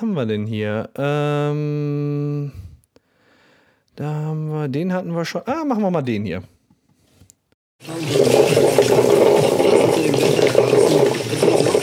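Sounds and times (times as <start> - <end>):
speech: 0.0 - 2.7, 4.0 - 6.5, 7.8 - 8.8
coffee machine brewing with gurgling rush of water: 7.8 - 11.8.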